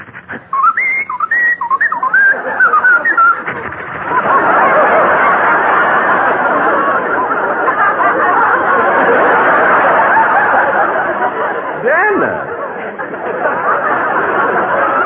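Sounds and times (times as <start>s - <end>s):
crowd-like noise: 0.0s - 15.0s
person whistling a lilting tune: 0.5s - 3.4s
laughter: 1.3s - 15.0s.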